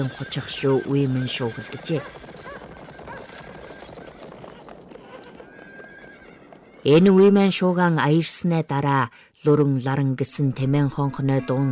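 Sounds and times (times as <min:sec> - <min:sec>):
speech: 0:00.0 - 0:02.4, 0:06.8 - 0:11.7
horse whinny: 0:00.0 - 0:07.2
horse hooves clopping in a ravine: 0:00.0 - 0:08.4.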